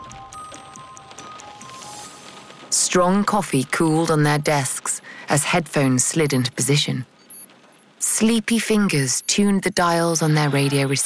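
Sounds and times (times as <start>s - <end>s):
raindrops tapping: 0.0s - 5.2s
steady rain: 0.0s - 8.5s
speech: 2.7s - 7.1s, 8.2s - 11.0s.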